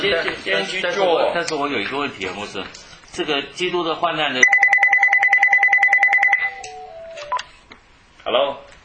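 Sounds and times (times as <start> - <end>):
speech: 0.0 - 4.6, 8.3 - 8.7
landline telephone ringing with an electronic trill: 4.4 - 7.5.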